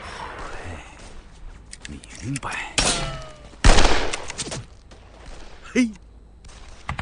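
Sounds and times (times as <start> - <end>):
speech: 2.2 - 3.0, 5.8 - 6.0
sniper rifle shot in a wartime exchange with an enemy sniper: 2.8 - 4.5.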